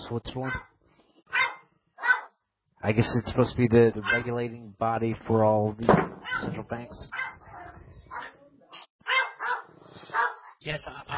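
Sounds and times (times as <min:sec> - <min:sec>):
noise: 0:00.0 - 0:11.1
speech: 0:00.1 - 0:00.7, 0:02.8 - 0:07.3, 0:10.6 - 0:11.1
dog barking: 0:00.4 - 0:00.7, 0:01.3 - 0:02.4, 0:04.0 - 0:04.4, 0:06.2 - 0:08.4, 0:09.0 - 0:11.1.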